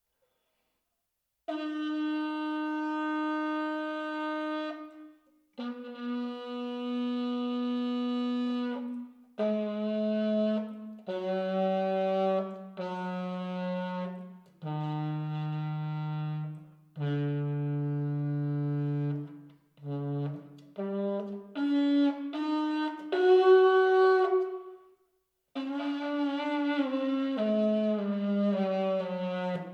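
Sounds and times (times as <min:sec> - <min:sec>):
alto saxophone sustained single notes and legato phrases: 0:01.5 - 0:24.9, 0:25.6 - 0:29.7.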